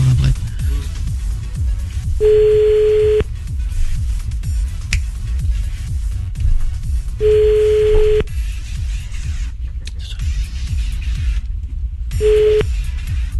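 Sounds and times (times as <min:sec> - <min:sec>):
constant low rumble: 0:00.0 - 0:13.3
telephone ringback tone during an outgoing call: 0:02.2 - 0:03.2, 0:07.2 - 0:08.3, 0:12.2 - 0:12.7.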